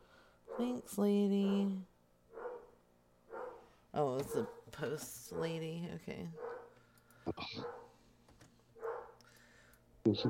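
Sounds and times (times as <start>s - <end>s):
speech: 0.6s - 1.9s, 4.0s - 6.5s, 7.3s - 7.8s, 10.0s - 10.2s
dog barking at a passing mail carrier: 2.3s - 3.6s, 4.3s - 4.6s, 6.4s - 6.7s, 7.5s - 7.9s, 8.8s - 9.2s.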